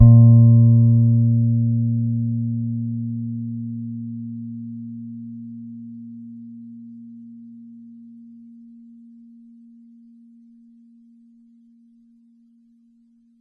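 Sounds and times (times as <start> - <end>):
soft A#3 note on a Pedulla Thunderbass bass guitar: 0.0 - 5.8.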